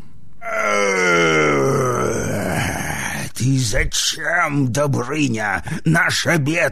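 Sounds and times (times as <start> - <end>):
dragon roaring: 0.4 - 3.1
speech: 3.7 - 6.7.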